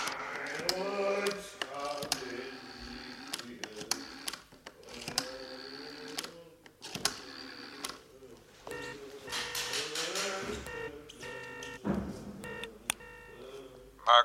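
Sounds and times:
noise: 0.0s - 14.2s
touch-tone beeps of a telephone being dialed: 8.7s - 10.0s, 10.6s - 11.8s, 12.4s - 13.4s.

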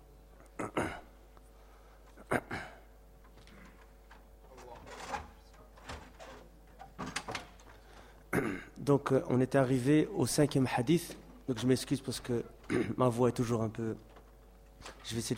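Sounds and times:
door being closed with faint thumps and clatters: 3.2s - 8.1s
speech: 8.9s - 14.1s, 14.8s - 15.3s.

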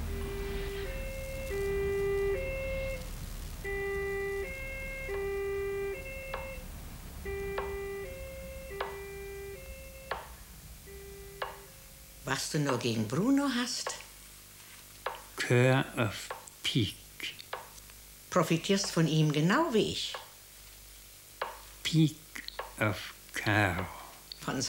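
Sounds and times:
vehicle two-tone siren: 0.0s - 12.2s
low rumble: 0.0s - 12.3s
speech: 12.3s - 13.9s, 15.5s - 17.4s, 18.3s - 20.2s, 21.9s - 22.2s, 22.8s - 24.6s.

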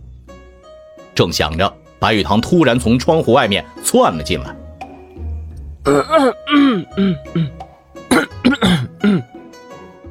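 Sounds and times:
speech: 1.2s - 4.6s, 5.8s - 7.6s
man clearing throat: 5.9s - 9.4s
man giving a nervous feigned cough: 5.9s - 9.4s.

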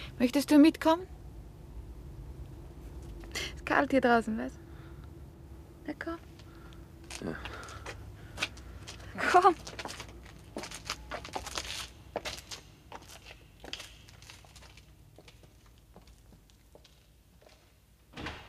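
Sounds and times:
speech: 0.2s - 1.2s, 3.7s - 4.6s, 5.8s - 6.3s, 7.2s - 7.6s, 9.2s - 9.8s
rustling: 6.4s - 15.7s
door being opened and closed carefully: 18.1s - 18.4s.

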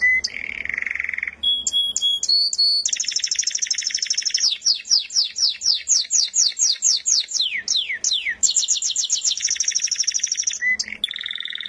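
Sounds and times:
canary song: 0.0s - 11.6s.

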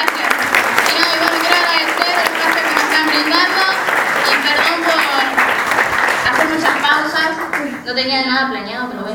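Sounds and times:
audience applause at a public hearing: 0.0s - 7.8s
speech: 8.0s - 9.0s.

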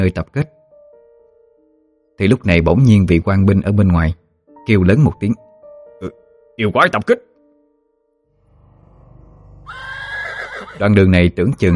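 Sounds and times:
speech: 0.0s - 0.6s, 2.2s - 5.4s, 6.0s - 7.3s, 10.8s - 11.7s
panicked horses rearing and neighing wildly: 9.6s - 11.0s.

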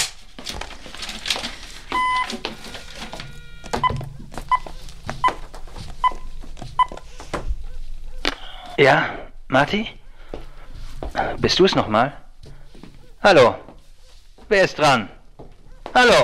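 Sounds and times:
low noise: 0.0s - 16.2s
touch-tone dialing beeps from telephone redial automatic number dialing: 2.0s - 2.3s, 3.1s - 4.7s, 6.0s - 7.0s
speech: 8.8s - 10.0s, 11.4s - 12.2s, 13.2s - 13.7s, 14.5s - 15.2s, 16.0s - 16.2s.

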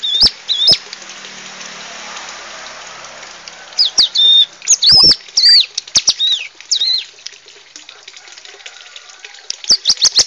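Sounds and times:
bar-winged prinia song of high slurred whistled notes: 0.0s - 0.8s, 3.8s - 7.1s, 9.7s - 10.2s.

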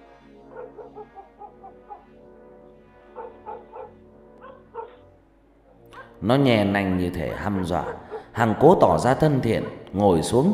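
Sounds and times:
stray dog barking fiercely with its hackles raised: 0.5s - 2.2s, 3.1s - 5.0s, 7.3s - 8.4s
speech: 6.2s - 10.5s.

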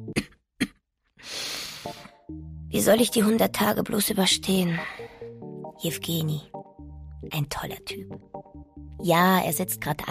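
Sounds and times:
person coughing in a smoke-filled hair salon: 0.1s - 0.8s
rough breathy noise: 1.2s - 2.1s
speech: 2.7s - 5.0s, 5.8s - 6.5s, 7.3s - 8.3s, 9.0s - 10.0s.

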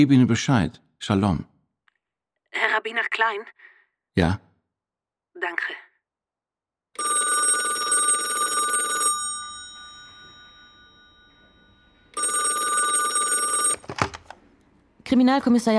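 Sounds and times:
speech: 0.0s - 1.5s, 2.5s - 4.5s, 5.4s - 5.8s, 7.0s - 7.6s, 15.1s - 15.7s
telephone bell ringing: 7.0s - 14.0s.

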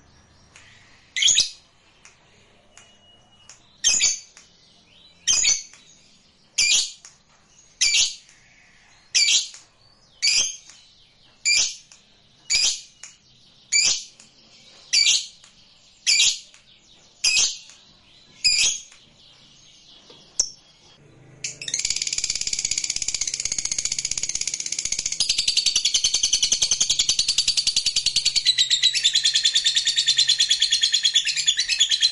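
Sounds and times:
lovebird chirps: 0.0s - 32.1s.

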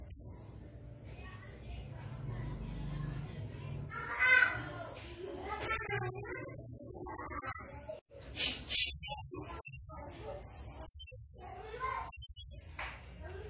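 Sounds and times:
background bird chirps and chatter: 0.0s - 13.4s
blue-crowned hanging parrot high-pitched pulsed trill and buzzy bursts: 5.7s - 7.7s, 8.8s - 10.1s, 12.1s - 12.6s.

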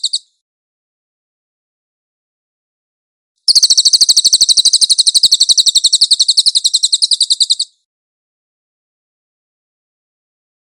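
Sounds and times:
cililin song used as a master for training songbirds: 0.0s - 0.3s, 3.5s - 7.9s.

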